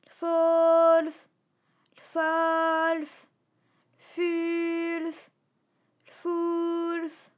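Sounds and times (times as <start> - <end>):
nonsense vocal syllables: 0.0 - 1.3, 2.0 - 3.4, 4.0 - 5.4, 6.1 - 7.3.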